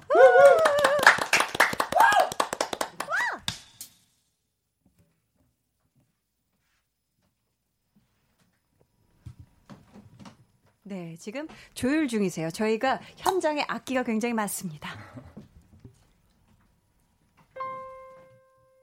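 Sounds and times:
voices whooping and cheering: 0.0 - 2.4
audience applause: 0.1 - 3.4
speech: 11.2 - 15.1.

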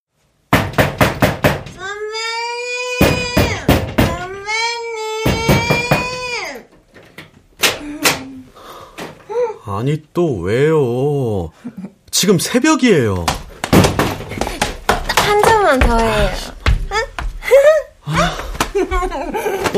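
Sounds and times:
rapid loud knocks on a room door: 0.5 - 1.8, 3.0 - 4.4, 5.2 - 6.4, 13.3 - 17.3
person making drawn-out whiny vocal wails: 1.8 - 6.7, 15.1 - 18.6
speech: 9.8 - 13.4, 15.7 - 16.5, 19.0 - 19.7
laughter: 17.4 - 19.7.

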